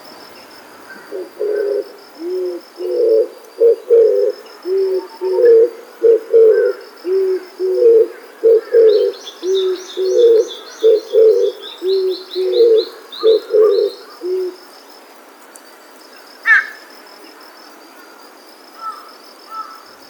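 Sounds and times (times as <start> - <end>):
Ryukyu oriental turtle dove cooing song: 0.9 - 14.7
small birds chirping: 2.8 - 14.5.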